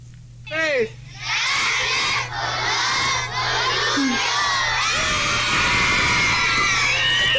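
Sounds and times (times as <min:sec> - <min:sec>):
schoolchildren shouting thanks for the swings in unison: 0:01.2 - 0:07.3.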